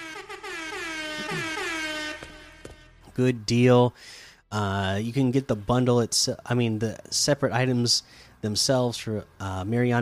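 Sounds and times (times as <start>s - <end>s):
brassy video game air horn emote blaring: 0.0s - 3.1s
speech: 1.2s - 1.6s, 3.2s - 10.0s.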